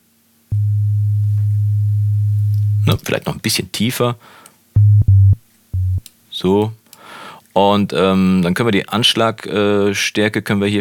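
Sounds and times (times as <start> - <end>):
steady low sine tone: 0.5 - 3.0, 4.8 - 6.1
speech: 3.1 - 4.5, 6.4 - 6.8, 7.6 - 10.7.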